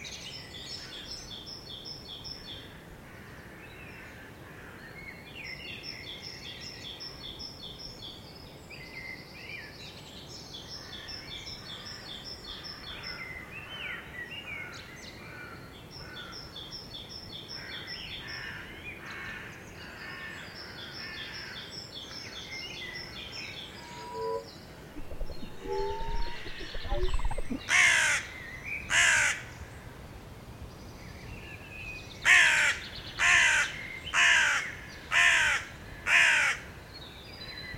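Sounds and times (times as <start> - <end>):
small birds trilling in a city park: 23.7 - 27.8
harsh crow-like caws in a city park: 32.3 - 36.6.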